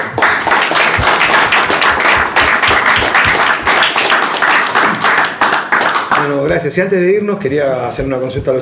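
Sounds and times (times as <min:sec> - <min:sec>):
group of people in a studio applauding: 0:00.0 - 0:06.5
speech: 0:06.3 - 0:08.5.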